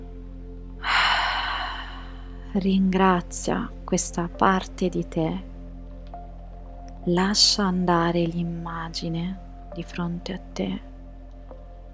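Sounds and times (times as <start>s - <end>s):
deep airy breath during a guided exercise: 0.8s - 2.5s
speech: 2.5s - 5.5s, 7.0s - 10.9s.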